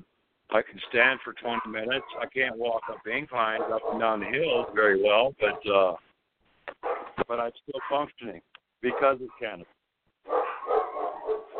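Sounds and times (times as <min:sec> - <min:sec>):
speech: 0:00.5 - 0:06.1, 0:07.3 - 0:09.8
several dogs barking in an office: 0:01.2 - 0:05.9, 0:06.7 - 0:08.1, 0:08.8 - 0:09.6, 0:10.2 - 0:11.5.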